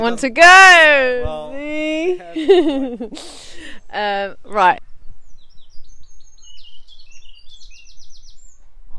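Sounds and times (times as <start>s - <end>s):
speech: 0.0s - 4.9s
two birds chirping: 0.0s - 8.9s
laughter: 2.1s - 3.8s.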